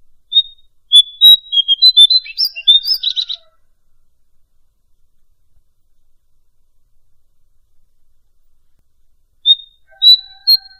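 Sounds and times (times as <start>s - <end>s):
bird song: 0.0s - 4.3s, 9.4s - 10.7s.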